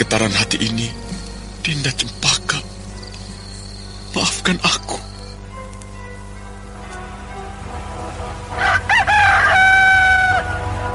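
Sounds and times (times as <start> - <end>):
speech: 0.0 - 1.0, 1.6 - 2.4, 4.2 - 5.1
rooster crowing at dawn: 8.6 - 10.7.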